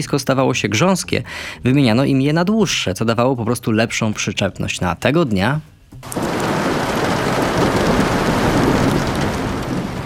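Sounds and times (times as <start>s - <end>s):
speech: 0.0s - 6.2s
heavy rain: 6.0s - 10.0s.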